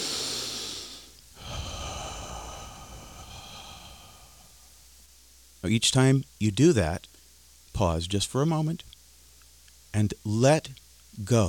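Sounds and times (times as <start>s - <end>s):
person breathing out completely during a guided relaxation breathing exercise: 0.0s - 4.8s
speech: 5.6s - 7.1s, 7.8s - 8.9s, 10.0s - 11.4s.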